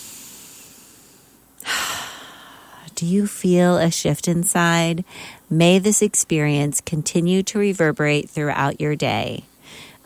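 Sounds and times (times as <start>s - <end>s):
deep breath in: 0.0s - 2.8s, 5.1s - 5.4s, 9.6s - 10.0s
speech: 3.0s - 9.9s.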